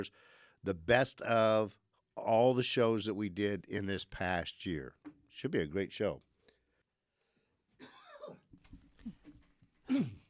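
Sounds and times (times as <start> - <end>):
speech: 0.0 - 6.3, 9.9 - 10.2
person coughing: 7.8 - 9.3, 9.9 - 10.2
person clearing throat: 7.8 - 10.2
person grunting: 9.9 - 10.2.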